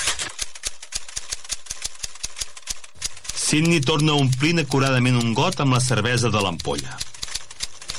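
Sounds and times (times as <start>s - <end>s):
manual typewriter typing: 0.0s - 7.9s
speech: 3.5s - 7.1s.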